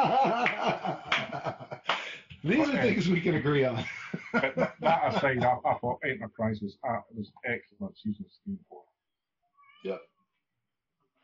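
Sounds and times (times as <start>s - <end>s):
laughter: 0.0s - 7.3s
speech: 2.4s - 8.8s, 9.8s - 10.1s
cat meowing: 9.6s - 10.0s.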